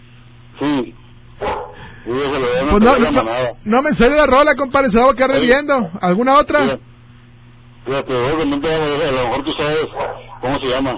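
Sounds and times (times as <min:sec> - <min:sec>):
low steady hum: 0:00.0 - 0:10.9
speech: 0:00.8 - 0:06.9, 0:07.8 - 0:10.9
dogs barking: 0:01.4 - 0:02.0, 0:09.9 - 0:10.5.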